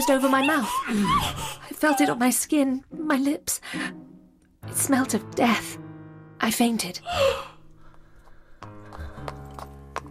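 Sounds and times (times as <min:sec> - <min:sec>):
speech: 0:00.0 - 0:04.0, 0:04.7 - 0:07.5
saddled white horse's hooves clip-clopping: 0:08.2 - 0:10.0.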